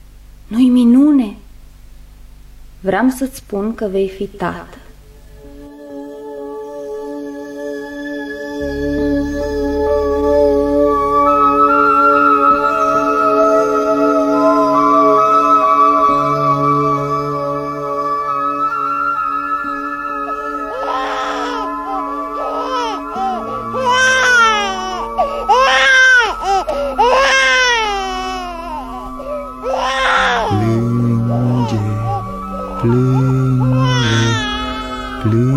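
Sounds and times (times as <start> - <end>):
speech: 0.5 - 1.4, 2.8 - 4.8
steady sustained tonal drone: 3.1 - 35.5
infant crying: 20.1 - 35.5.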